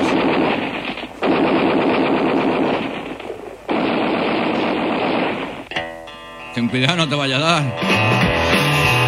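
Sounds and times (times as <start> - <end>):
automatic gunfire: 0.0 - 5.7
scattered gunshots: 0.0 - 5.7
speech: 6.6 - 8.9.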